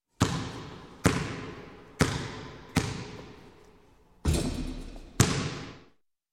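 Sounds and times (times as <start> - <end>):
basketball shot and miss: 0.2 - 3.4, 4.2 - 5.9.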